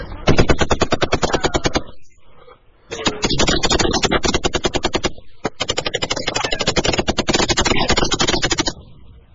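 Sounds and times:
automatic gunfire as police and smugglers exchange fire: 0:00.3 - 0:01.9, 0:02.9 - 0:08.8.

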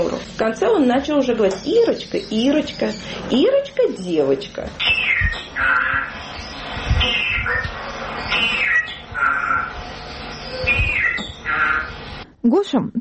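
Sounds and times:
speech: 0:00.0 - 0:09.6, 0:12.4 - 0:13.0
parrot squawking: 0:04.8 - 0:12.2.

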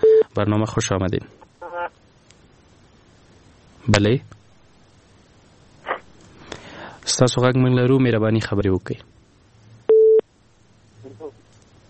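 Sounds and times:
telephone busy tone from a failed call-in connection: 0:00.0 - 0:00.3, 0:09.9 - 0:10.2
speech: 0:00.4 - 0:01.6, 0:03.9 - 0:04.4, 0:07.1 - 0:09.1.

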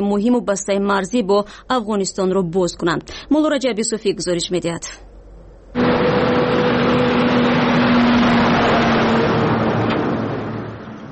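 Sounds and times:
speech: 0:00.0 - 0:05.1
road noise: 0:05.2 - 0:11.0
heavy cargo truck engine droning: 0:05.4 - 0:11.0.

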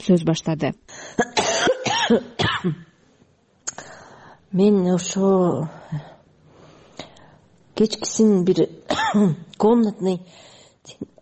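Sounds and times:
speech: 0:00.0 - 0:01.4, 0:02.1 - 0:02.9, 0:04.5 - 0:06.1, 0:07.8 - 0:11.1
heavy harsh coughing from a person recovering from an illness: 0:01.1 - 0:02.9, 0:08.9 - 0:09.4.

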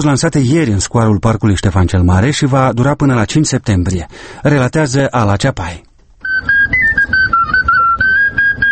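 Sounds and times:
speech: 0:00.0 - 0:06.6
boy playing a fluier folk flute at a campaign launch show in a park square: 0:06.2 - 0:08.6.

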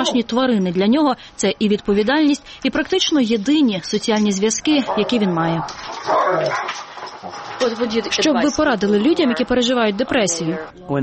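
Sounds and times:
speech: 0:00.0 - 0:11.0
malamute wolf-dog mix barking: 0:04.7 - 0:08.1.

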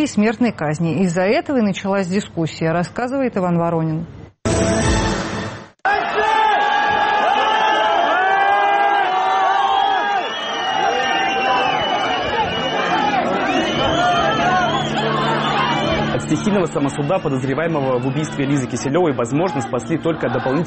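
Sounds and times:
speech: 0:00.0 - 0:04.7, 0:16.3 - 0:20.6
angry crowd of townspeople shouting and yelling at police: 0:05.9 - 0:20.6.

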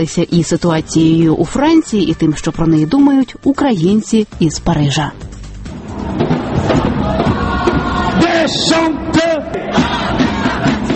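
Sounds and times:
speech: 0:00.0 - 0:05.3, 0:08.5 - 0:09.4
dense crowd of protesters shouting and yelling: 0:05.8 - 0:10.9.

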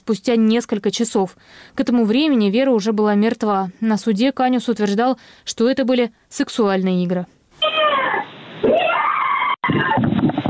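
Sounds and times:
speech: 0:00.1 - 0:07.4
woman screaming behind a door over a telephone line: 0:07.6 - 0:10.0.

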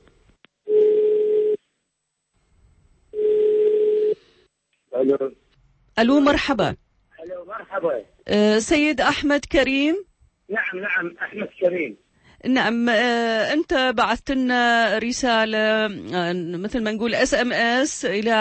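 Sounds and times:
telephone ringback tones: 0:00.7 - 0:01.6, 0:03.2 - 0:04.2
speech: 0:06.0 - 0:06.8, 0:07.8 - 0:10.0, 0:10.7 - 0:18.3.

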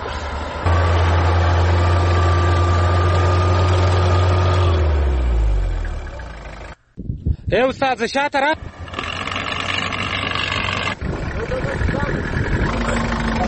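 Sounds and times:
engines idling in vehicles stuck on a blocked road: 0:00.0 - 0:06.8, 0:08.6 - 0:13.4
speech: 0:07.5 - 0:08.7.

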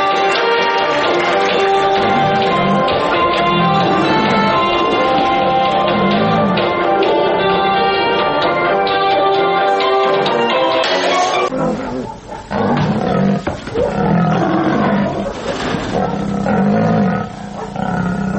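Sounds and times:
tonal music-like passage: 0:00.0 - 0:11.5
lions and tigers roaring in a circus act: 0:01.2 - 0:07.5, 0:11.4 - 0:18.3
deep rumbling growls of big cats: 0:01.8 - 0:06.9, 0:11.5 - 0:18.3.

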